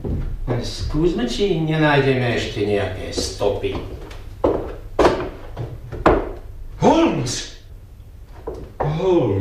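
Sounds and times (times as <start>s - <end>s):
speech: 0.6s - 4.0s, 7.2s - 7.5s, 9.0s - 9.3s
sharp wooden thumps: 3.1s - 6.5s, 8.3s - 9.0s.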